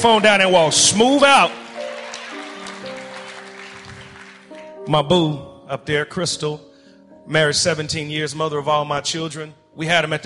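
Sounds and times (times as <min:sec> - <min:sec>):
speech: 0:00.0 - 0:01.6, 0:04.9 - 0:06.7, 0:07.3 - 0:10.2
audience applause for a performer's family: 0:00.0 - 0:04.8.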